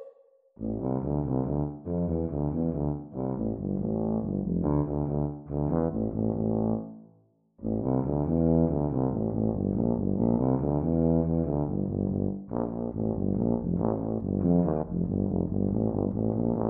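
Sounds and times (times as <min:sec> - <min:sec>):
Bb tuba duet at exam speed: 0:00.6 - 0:06.9, 0:07.6 - 0:16.6.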